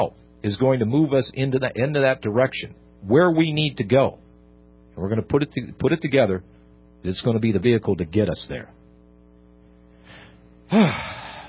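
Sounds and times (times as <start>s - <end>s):
speech: 0.0s - 4.2s, 5.0s - 8.8s, 10.7s - 11.1s
person short of breath gasping with one lung struggling: 10.0s - 11.4s.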